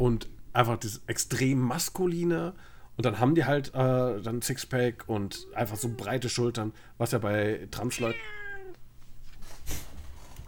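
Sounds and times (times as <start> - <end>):
speech: 0.0 - 8.4, 9.7 - 9.9
cat meowing: 5.3 - 6.2, 7.8 - 8.8
soft rustling: 8.0 - 10.4.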